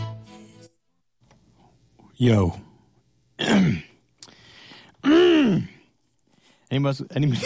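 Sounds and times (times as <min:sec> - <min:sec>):
speech: 0:02.2 - 0:02.7, 0:06.7 - 0:07.4
phlegmy throat clearing: 0:03.4 - 0:04.0, 0:05.0 - 0:05.8.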